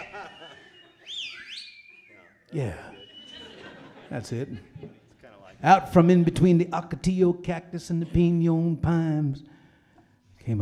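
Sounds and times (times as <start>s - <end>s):
person whistling a short tune with sliding pitch: 0.0s - 3.6s
laughter: 0.0s - 9.4s
speech: 2.5s - 3.0s, 4.1s - 5.0s, 5.6s - 9.5s.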